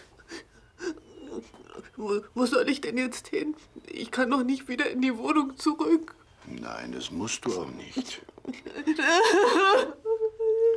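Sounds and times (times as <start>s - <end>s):
young woman sobbing and whimpering: 0.0s - 2.4s, 7.9s - 10.7s
speech: 1.4s - 10.0s.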